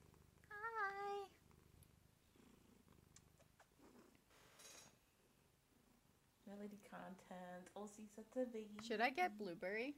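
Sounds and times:
female cat purring: 0.0 - 7.4
faint clicks: 2.9 - 4.2
speech: 6.5 - 9.9.

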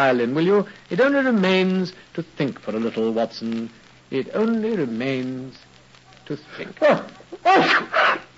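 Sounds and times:
speech: 0.0 - 5.7, 6.3 - 8.2
person sneezing after taking snuff: 6.8 - 8.3.

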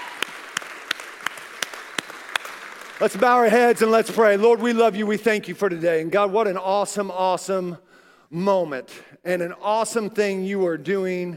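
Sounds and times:
scattered applause in a large room: 0.0 - 3.8
crowd clapping in unison: 0.0 - 4.4
speech: 3.0 - 11.3.

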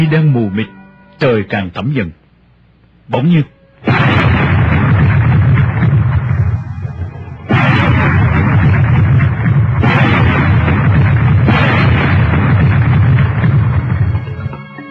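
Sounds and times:
speech: 0.1 - 2.2, 3.1 - 4.1
gunshots with rumbling echo heard aboard a boat: 3.8 - 14.5.

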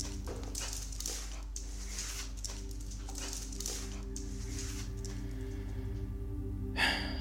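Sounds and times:
dog sniffing around inside a house: 0.0 - 5.4
steady low hum: 0.0 - 7.2.

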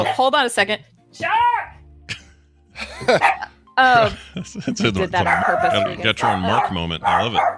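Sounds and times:
speech: 0.0 - 1.8, 3.0 - 7.5
people laughing: 2.1 - 6.9
female dog barking and yipping: 3.1 - 3.5, 5.2 - 7.5
people chatting: 3.8 - 7.5.

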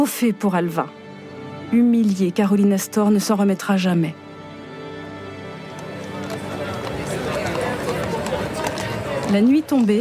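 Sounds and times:
speech: 0.0 - 1.0, 1.7 - 4.2, 9.3 - 10.0
bustling street noise: 0.0 - 10.0
hooves of horse-drawn carriages clip-clopping: 5.4 - 10.0
murmur of crowd chatter: 5.6 - 10.0
horse-drawn carriages clattering in front of a residence: 5.7 - 10.0.

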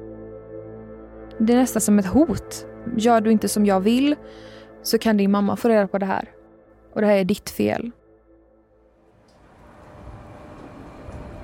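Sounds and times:
speech: 1.4 - 8.0
train in Gothenburg rumbling: 9.1 - 11.4.

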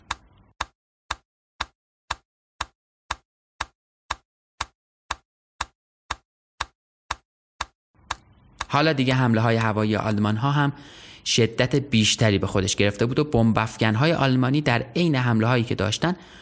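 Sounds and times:
slow steady ticking broadcast signal: 0.0 - 8.8
speech: 8.7 - 16.4.

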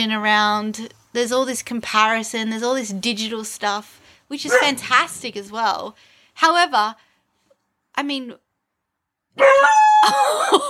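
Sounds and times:
speech: 0.0 - 7.1, 8.0 - 8.4, 9.4 - 10.6
dog barking: 4.5 - 4.9.

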